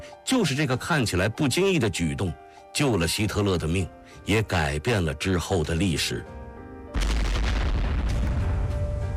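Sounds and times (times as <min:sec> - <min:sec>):
speech: 0:00.1 - 0:06.4
bomb explosion with deep roaring rumble: 0:07.0 - 0:09.1.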